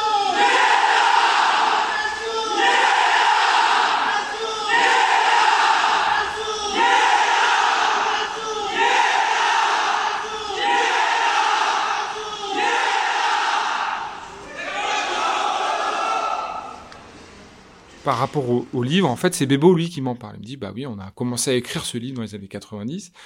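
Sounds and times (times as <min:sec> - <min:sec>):
crowd shouting a rhythmic call-and-response chant: 0:00.1 - 0:16.9
speech: 0:18.3 - 0:23.2.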